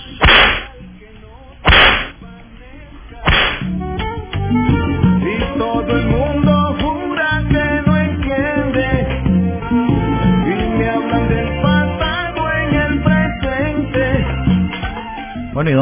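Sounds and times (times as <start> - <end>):
busy musical backing: 0.0 - 15.8
whip cracking: 0.2 - 0.8, 1.7 - 2.2, 3.3 - 3.8
speech: 15.6 - 15.8.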